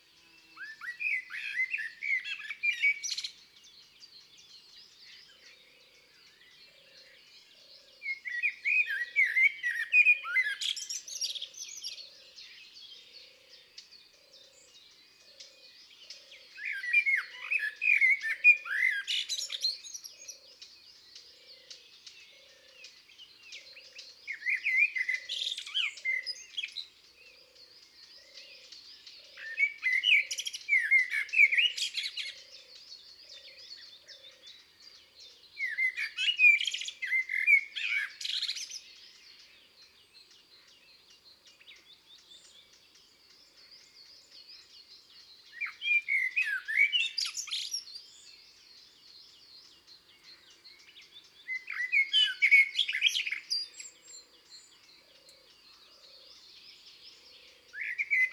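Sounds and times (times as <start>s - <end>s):
common blackbird singing in the woods and forests: 0.0s - 58.3s.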